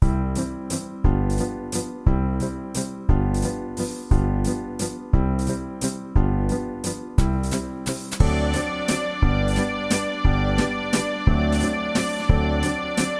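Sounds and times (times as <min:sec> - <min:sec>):
Viennese waltz music: 0:00.0 - 0:13.1.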